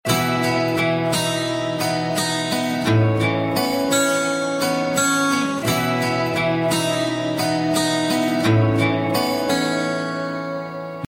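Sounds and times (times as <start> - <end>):
electronica guitar music with love tone: 0.0 - 11.0.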